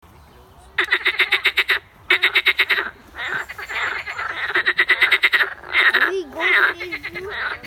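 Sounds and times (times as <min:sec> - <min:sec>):
frogs croaking in rapid pulsed trains: 0:00.8 - 0:07.6.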